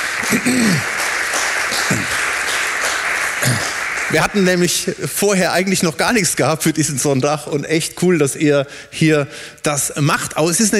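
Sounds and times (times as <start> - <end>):
room full of people applauding: 0.0 - 4.8
speech: 0.3 - 0.9, 3.4 - 10.7.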